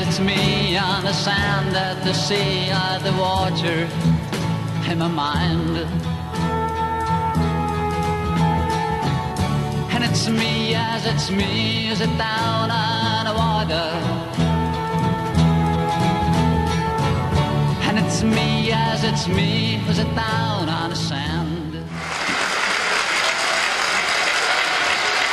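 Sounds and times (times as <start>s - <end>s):
singer performing melodic pop song on an archival TV talent show recording: 0.0s - 6.6s, 9.8s - 14.8s, 17.7s - 22.0s
full band playing: 0.0s - 25.3s
speech: 0.1s - 4.2s, 4.9s - 6.5s, 10.1s - 14.4s, 18.2s - 21.4s.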